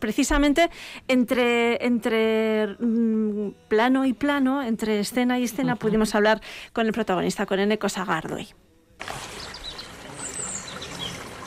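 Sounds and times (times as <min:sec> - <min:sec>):
speech: 0:00.0 - 0:09.4
flowing stream water: 0:09.0 - 0:11.4
small birds chirping: 0:09.2 - 0:11.4.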